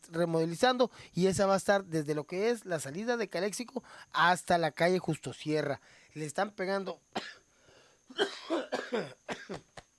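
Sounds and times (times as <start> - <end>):
speech: 0.1 - 7.4, 8.1 - 9.8
person coughing: 7.2 - 7.4, 8.1 - 9.8.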